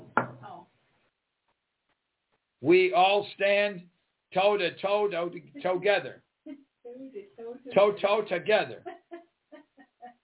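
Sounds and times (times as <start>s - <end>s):
single sharp knock on a hard surface: 0.0s - 0.4s
speech: 2.6s - 9.0s.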